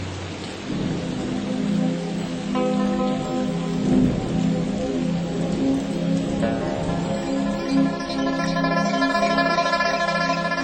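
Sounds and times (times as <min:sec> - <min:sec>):
steady rain: 0:00.0 - 0:10.6
sustained tonal drone: 0:06.4 - 0:10.6.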